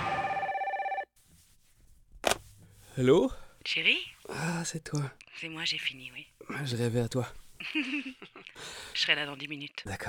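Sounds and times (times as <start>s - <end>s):
telephone bell ringing with a rapid metallic trill: 0.2s - 1.1s
speech: 3.0s - 10.0s.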